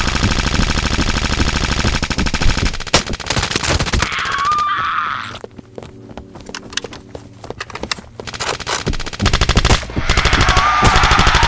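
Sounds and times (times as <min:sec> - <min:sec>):
machine guns firing in rapid automatic bursts: 0:00.0 - 0:04.6, 0:08.2 - 0:11.4.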